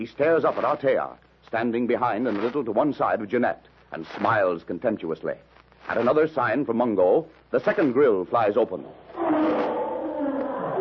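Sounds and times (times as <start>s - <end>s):
speech: 0.0s - 9.6s
huge black-maned lion roaring savagely as it bounds into a pit: 9.0s - 10.7s.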